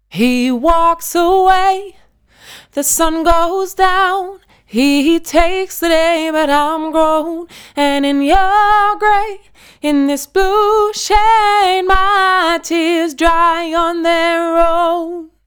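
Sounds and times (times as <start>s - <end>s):
retro vocals: 0.0s - 15.4s.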